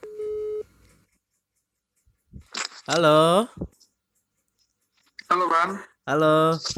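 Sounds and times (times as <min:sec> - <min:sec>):
electronic telephone dialing tone as a phone call is placed: 0:00.0 - 0:00.6
speech: 0:02.9 - 0:03.8, 0:05.3 - 0:06.7.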